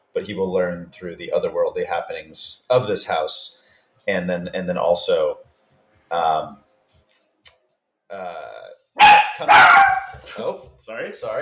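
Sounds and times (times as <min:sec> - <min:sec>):
speech: 0:00.2 - 0:05.5, 0:06.1 - 0:06.7, 0:08.1 - 0:11.4
dog barking and snarling viciously at a corner: 0:09.0 - 0:10.1.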